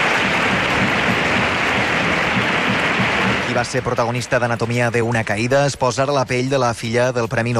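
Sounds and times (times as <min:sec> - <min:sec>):
large crowd standing ovation applause in the Lumière theatre in Cannes: 0:00.0 - 0:04.8
speech: 0:03.6 - 0:07.5.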